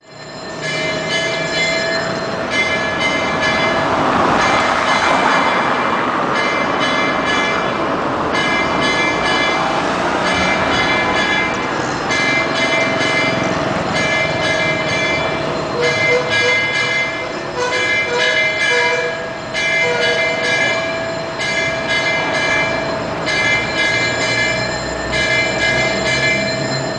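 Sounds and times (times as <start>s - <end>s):
Hindu temple bell ringing: 0.0s - 26.9s.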